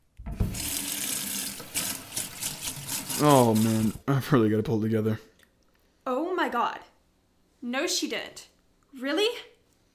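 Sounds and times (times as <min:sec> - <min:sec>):
faucet water gushing into a sink: 0:00.2 - 0:04.0
speech: 0:03.2 - 0:05.3, 0:06.5 - 0:06.9, 0:07.6 - 0:09.5.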